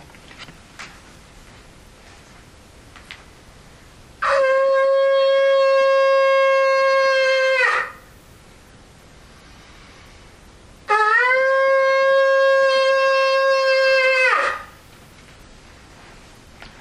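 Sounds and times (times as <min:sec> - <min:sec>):
hunting horn: 0:04.2 - 0:08.1, 0:10.9 - 0:14.8.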